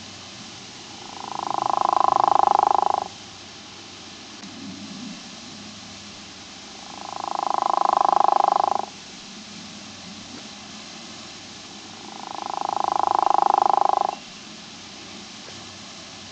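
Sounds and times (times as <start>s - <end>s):
true frog of family Ranidae calling: 0.8s - 3.2s, 6.6s - 9.0s, 11.8s - 14.3s.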